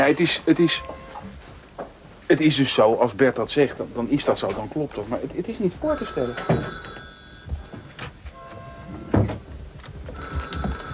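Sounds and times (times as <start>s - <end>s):
speech: 0.0s - 1.0s, 2.3s - 6.9s
telephone ringing with a metallic bell tone: 5.8s - 9.3s, 10.1s - 10.9s.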